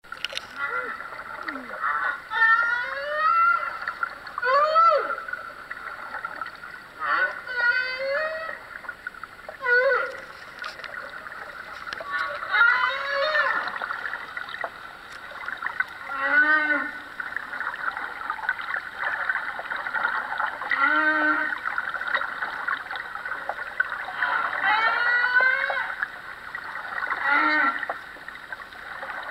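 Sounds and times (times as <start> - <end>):
humpback whale song: 0.4 - 29.3.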